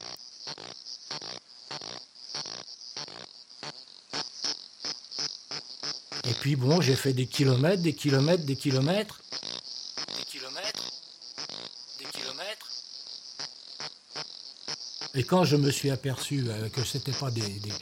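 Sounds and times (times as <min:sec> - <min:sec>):
cicadas of a new genus and species calling in the Kenyan steppe: 0:00.0 - 0:17.8
high insect drone: 0:00.0 - 0:17.8
speech: 0:06.3 - 0:09.2, 0:15.2 - 0:17.8.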